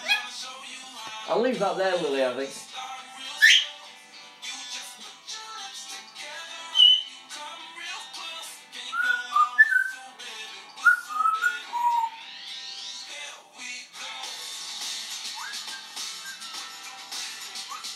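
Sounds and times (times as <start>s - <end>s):
parrot squawk: 0.0s - 0.4s, 3.4s - 3.8s, 6.7s - 7.1s, 8.9s - 10.0s, 10.8s - 12.8s, 17.6s - 17.9s
parrot whistling warbling notes: 0.0s - 0.4s, 3.4s - 3.8s, 6.7s - 7.2s, 8.9s - 10.0s, 10.8s - 12.2s, 15.2s - 16.6s, 17.5s - 17.9s
speech: 1.3s - 2.6s.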